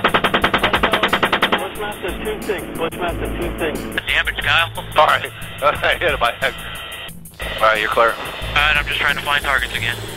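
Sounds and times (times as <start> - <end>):
rapid automatic gunfire during a combat engagement: 0.0 - 1.8
rumbling noise: 0.0 - 10.1
speech: 1.9 - 6.7, 7.6 - 10.1.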